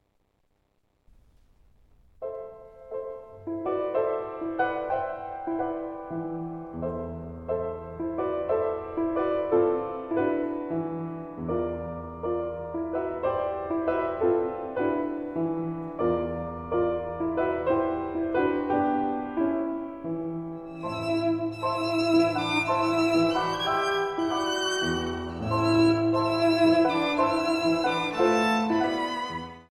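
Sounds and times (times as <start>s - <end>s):
piano trio music in A minor: 2.2s - 29.6s.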